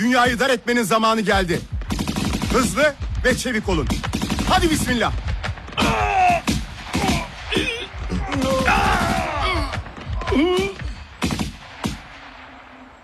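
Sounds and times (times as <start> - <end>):
speech: 0.0 - 1.8, 2.5 - 5.2, 10.4 - 10.8
sharp irregular bursts of gunfire: 1.3 - 13.0
strained shouts: 5.4 - 11.0
groaning voices: 5.7 - 11.0.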